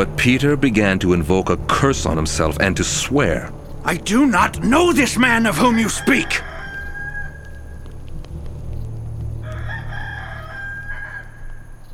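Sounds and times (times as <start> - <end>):
speech: 0.0 - 6.5
low rumble: 0.0 - 11.9
rooster crowing: 5.2 - 8.0, 9.4 - 11.9.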